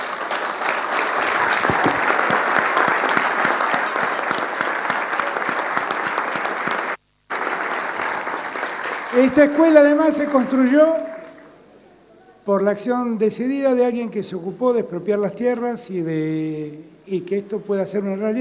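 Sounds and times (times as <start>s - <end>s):
large audience at a school applauding in tribute: 0.0s - 11.6s
speech: 9.2s - 11.0s, 12.5s - 18.3s.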